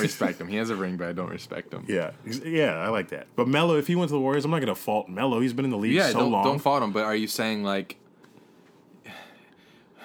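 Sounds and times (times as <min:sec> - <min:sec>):
speech: 0:00.0 - 0:08.0
heavy breathing: 0:08.4 - 0:10.0.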